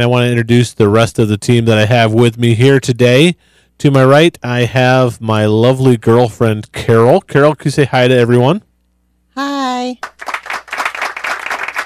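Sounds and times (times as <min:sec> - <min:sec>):
speech: 0:00.0 - 0:08.7, 0:09.4 - 0:10.3
light applause from a small studio crowd: 0:10.0 - 0:11.8.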